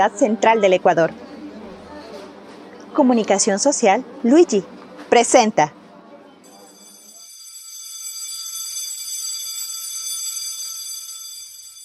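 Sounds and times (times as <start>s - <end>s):
speech: 0.0s - 1.2s, 3.0s - 5.8s
electric school bell ringing shrilly to signal classes have begun: 6.5s - 11.8s.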